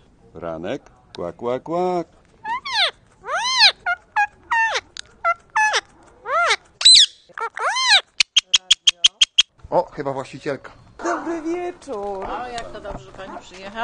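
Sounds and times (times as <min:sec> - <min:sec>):
speech: 0:00.4 - 0:02.2, 0:10.0 - 0:13.8
pet bird chattering at a mirror: 0:02.4 - 0:09.5.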